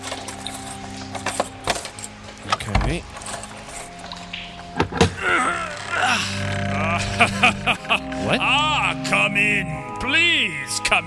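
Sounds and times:
keys jangling: 0.0s - 4.4s
steady low hum: 0.0s - 10.2s
speech: 2.9s - 3.2s
laughter: 5.2s - 9.7s.

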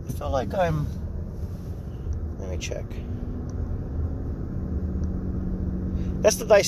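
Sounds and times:
road rumble and engine drone inside a moving truck: 0.0s - 6.6s
speech: 0.1s - 1.0s, 2.4s - 3.2s, 6.2s - 6.6s.

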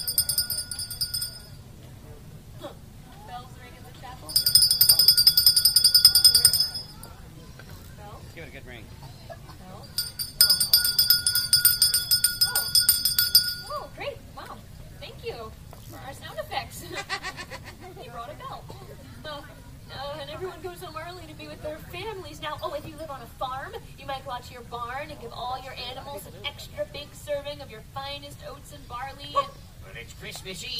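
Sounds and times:
chapel bells ringing: 0.0s - 1.6s, 4.3s - 7.1s, 9.8s - 13.9s
low murmur: 0.0s - 30.7s
laughter: 16.8s - 18.2s.

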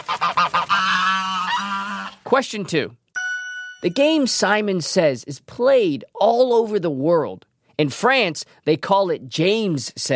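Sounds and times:
goose honking: 0.0s - 2.2s
speech: 2.3s - 3.0s, 3.8s - 10.1s.

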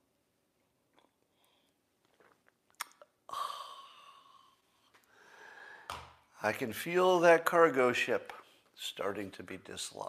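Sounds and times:
person slurping coffee: 2.0s - 3.1s
speech: 6.4s - 10.0s.

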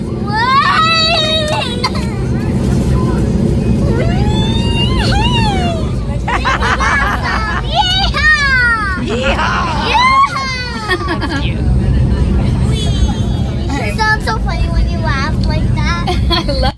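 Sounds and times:
faint murmuring voices: 0.0s - 14.6s
steady low airplane cabin rumble: 0.0s - 16.7s
laughter: 6.1s - 8.0s, 9.0s - 11.7s
young child shrieking and squealing with excitement on an airplane: 9.0s - 10.7s.

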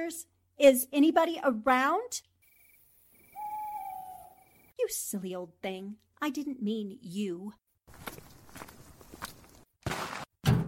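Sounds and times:
speech: 0.1s - 2.3s, 4.8s - 7.6s
footsteps: 7.9s - 10.3s.

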